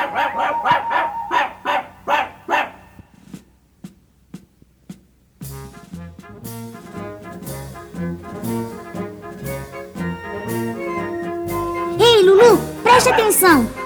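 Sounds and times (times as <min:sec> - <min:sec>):
small dog yapping with sharp tuneless barks: 0:00.0 - 0:02.8
full band of instruments playing loudly: 0:05.4 - 0:13.8
speech: 0:13.1 - 0:13.8.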